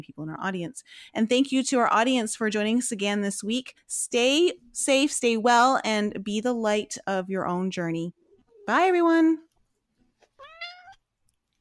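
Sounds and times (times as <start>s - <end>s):
speech: 0.0s - 9.5s
cat meowing: 10.4s - 11.0s.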